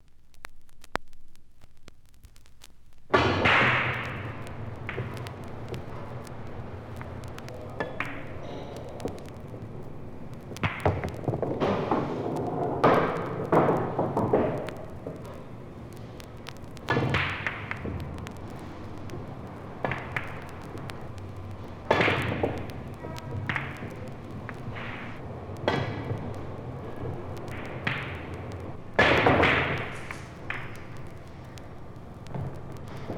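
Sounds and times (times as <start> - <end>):
billiard balls on a pool table: 3.1 - 33.1.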